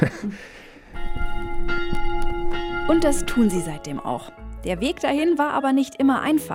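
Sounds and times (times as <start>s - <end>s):
speech: 0.0s - 0.6s, 2.9s - 6.5s
small chapel bell ringing: 1.0s - 4.5s.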